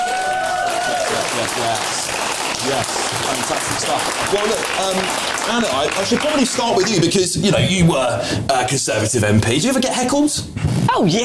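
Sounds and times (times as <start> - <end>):
audience applause for a panel at a live debate event: 0.0 - 7.3
speech: 1.4 - 2.0, 2.6 - 11.2.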